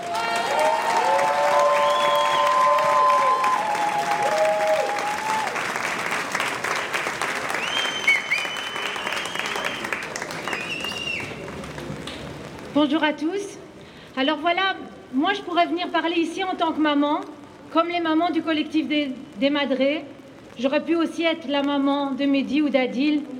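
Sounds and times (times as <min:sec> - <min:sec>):
whoops and cheers from a large audience: 0:00.0 - 0:05.7, 0:07.5 - 0:11.4
large audience applause welcoming a speaker: 0:00.0 - 0:12.5
speech: 0:12.8 - 0:13.4, 0:14.2 - 0:23.3.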